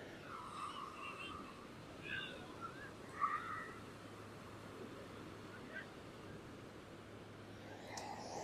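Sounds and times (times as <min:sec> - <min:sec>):
soft steady wash of sea waves: 0:00.0 - 0:08.4
faint bird calls: 0:00.3 - 0:03.9.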